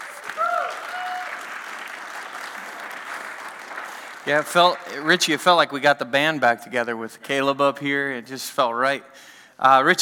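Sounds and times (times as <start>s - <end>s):
audience applause: 0.0s - 5.6s
speech: 4.2s - 9.9s.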